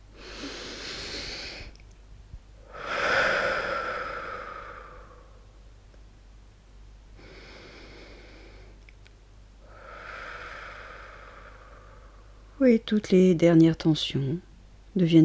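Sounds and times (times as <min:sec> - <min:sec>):
slow deep breaths during a guided relaxation exercise: 0:00.0 - 0:01.8, 0:02.6 - 0:05.7, 0:07.2 - 0:08.8, 0:09.6 - 0:12.6
low steady hum: 0:00.0 - 0:15.2
speech: 0:12.6 - 0:15.2.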